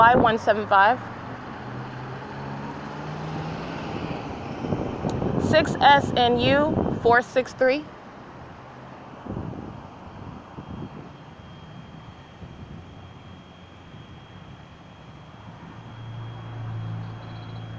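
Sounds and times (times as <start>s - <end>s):
speech: 0.0s - 1.2s, 5.4s - 7.9s
wind noise: 0.0s - 1.2s, 3.2s - 7.4s, 9.1s - 17.1s
fixed-wing aircraft engine drone passing overhead: 0.0s - 17.7s.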